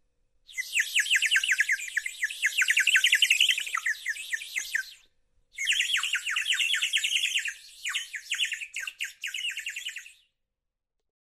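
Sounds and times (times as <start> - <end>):
small bird song with sharp high downslurred chirps and twitters: 0.5 - 10.4.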